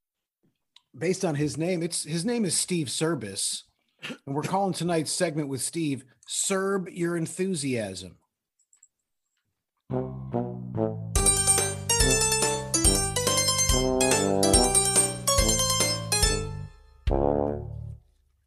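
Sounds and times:
speech: 0:01.0 - 0:08.2, 0:09.9 - 0:10.4
bouncy instrumental sitcom theme parody jingle: 0:09.9 - 0:18.0.

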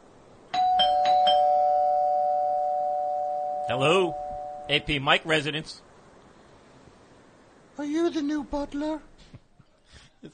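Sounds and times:
faint hiss: 0:00.0 - 0:10.3
electronic doorbell chiming: 0:00.5 - 0:04.9
speech: 0:03.7 - 0:05.9, 0:07.8 - 0:10.3.

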